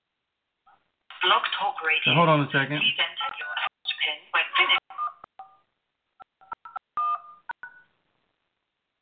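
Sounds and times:
speech: 1.2 - 3.3
telephone keypad dialing tones: 4.9 - 7.9.

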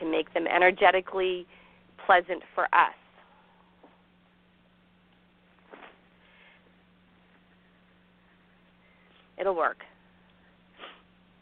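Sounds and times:
faint steady hum: 0.0 - 11.3
speech: 0.2 - 3.0, 9.4 - 9.9
short breathy nose sniff: 10.8 - 11.1.

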